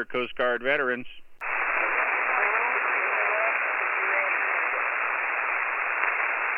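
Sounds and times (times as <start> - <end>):
speech: 0.0 - 1.3
band-limited radio static on an amateur radio band: 1.3 - 6.5.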